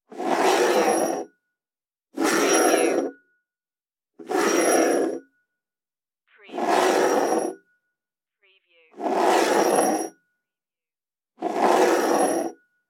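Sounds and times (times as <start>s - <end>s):
glass sliding over table: 0.1s - 1.2s, 2.2s - 3.1s, 4.2s - 5.2s, 6.6s - 7.6s, 9.0s - 10.1s, 11.4s - 12.6s.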